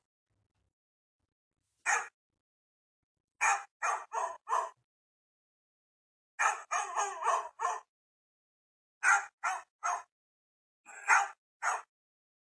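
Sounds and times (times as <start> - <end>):
dog barking: 1.9 - 2.1, 3.4 - 4.8, 6.4 - 7.9, 9.0 - 10.1, 10.9 - 11.9.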